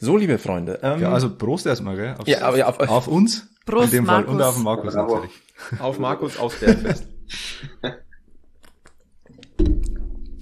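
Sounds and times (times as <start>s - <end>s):
speech: 0.0s - 8.0s
laughter: 5.6s - 8.1s
person chewing food: 8.5s - 9.6s.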